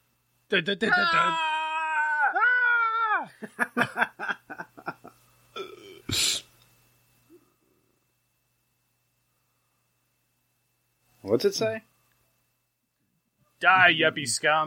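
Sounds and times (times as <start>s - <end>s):
speech: 0.5s - 1.6s, 3.3s - 4.6s, 11.3s - 11.9s, 13.6s - 14.6s
person letting out drawn-out wavering moans: 0.9s - 3.3s, 5.6s - 6.4s
laughter: 3.3s - 5.2s.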